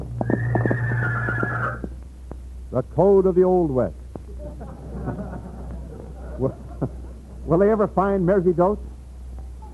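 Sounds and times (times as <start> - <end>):
horse neighing: 0.1 - 1.9
speech: 3.0 - 4.0, 7.5 - 8.9
laughter: 4.3 - 7.5.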